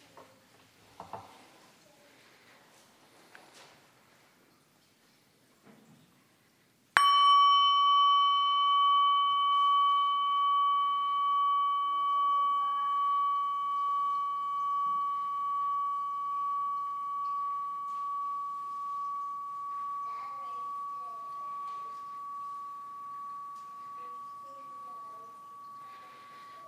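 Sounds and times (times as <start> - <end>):
bell struck once ringing with a long wavering tone: 7.0 - 26.6.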